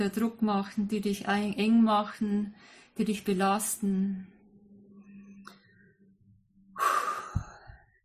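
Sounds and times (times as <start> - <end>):
speech: 0.0 - 4.3
quiet low hum: 2.4 - 8.0
slow exhale during a relaxation breathing exercise: 6.8 - 7.9.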